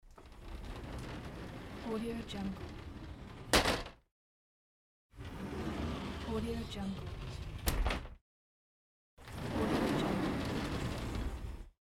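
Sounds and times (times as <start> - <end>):
sliding door: 0.1 - 3.9, 5.2 - 8.1, 9.2 - 11.8.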